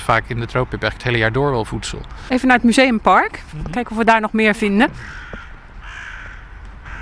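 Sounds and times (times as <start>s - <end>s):
steady outdoor hum: 0.0s - 7.0s
speech: 0.1s - 5.3s
crow cawing: 4.9s - 7.0s.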